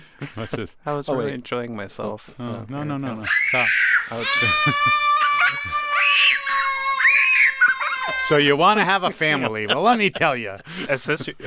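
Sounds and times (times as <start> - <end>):
speech: 0.2 - 5.8, 8.3 - 11.4
child screaming and crying: 3.2 - 8.5
laughter: 4.2 - 6.2, 7.6 - 11.4.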